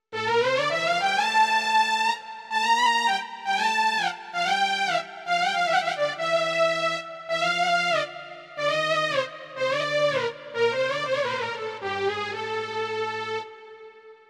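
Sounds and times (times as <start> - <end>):
slow string melody: 0.2 - 14.2.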